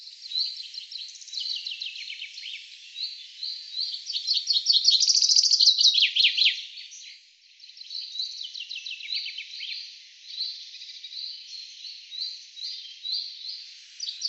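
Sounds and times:
Common chaffinch song: 0.0 - 14.2.

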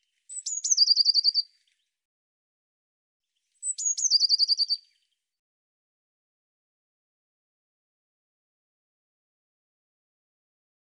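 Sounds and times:
bird singing: 0.1 - 1.9, 3.3 - 5.2.

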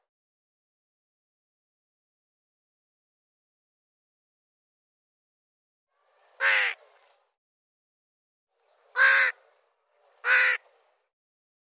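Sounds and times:
bird harsh raspy caws: 6.4 - 6.8, 8.9 - 9.4, 10.2 - 10.7.

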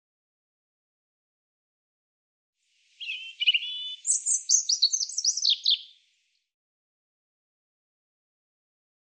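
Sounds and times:
European robin song: 2.8 - 6.4.

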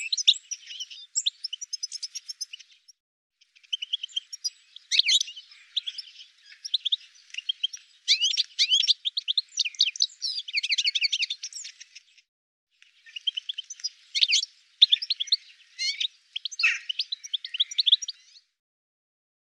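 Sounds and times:
birds chirping and twittering: 0.0 - 18.6.

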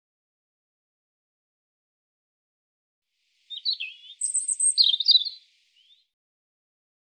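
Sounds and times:
European robin song with liquid descending run and twittering flourish: 3.4 - 6.2.

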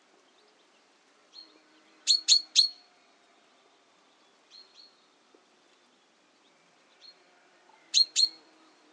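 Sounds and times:
common chaffinch clipped high-pitched calls: 2.1 - 2.8, 7.9 - 8.5.

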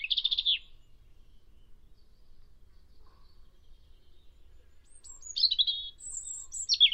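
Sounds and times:
European robin singing short high phrases: 0.0 - 6.9.

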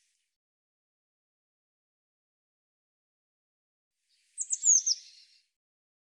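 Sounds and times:
Eurasian blue tit high twittering phrase: 4.4 - 5.2.

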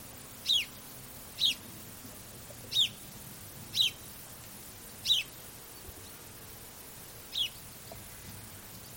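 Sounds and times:
background hiss: 0.0 - 8.9
bird chirps: 0.4 - 0.8, 1.4 - 1.6, 2.7 - 3.1, 3.7 - 4.0, 5.0 - 5.4, 7.3 - 7.7.

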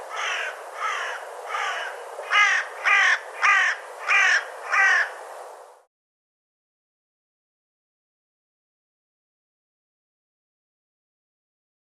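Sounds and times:
bird giving harsh hoarse caws: 0.0 - 5.2.

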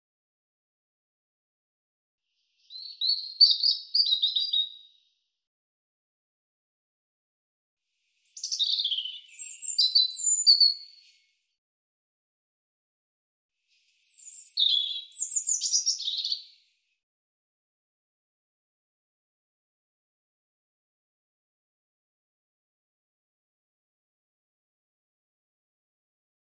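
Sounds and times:
European robin singing twittering phrases: 2.6 - 5.0, 8.3 - 11.2, 14.0 - 16.6.

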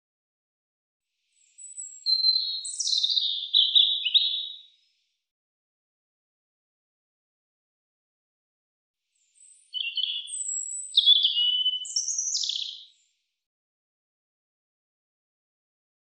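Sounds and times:
European robin song: 1.2 - 5.0, 9.1 - 13.2.

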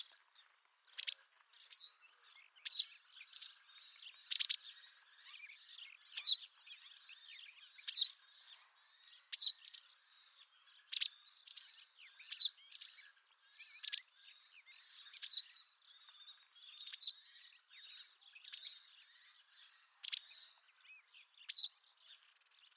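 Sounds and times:
white wagtail calling: 0.9 - 2.0, 2.6 - 8.3, 9.2 - 10.0, 10.7 - 15.6, 16.2 - 20.6.

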